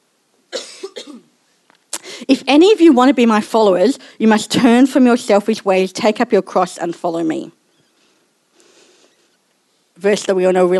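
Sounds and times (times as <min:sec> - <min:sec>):
person coughing: 0:00.5 - 0:01.3
speech: 0:02.3 - 0:07.6, 0:10.0 - 0:10.7.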